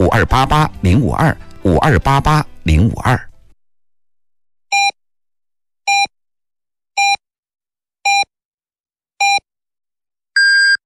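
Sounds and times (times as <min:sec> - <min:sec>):
speech: 0:00.1 - 0:03.3
radio hourly time signal short electronic beeps for Beijing time in China: 0:05.9 - 0:06.1, 0:07.0 - 0:07.2, 0:10.4 - 0:10.8.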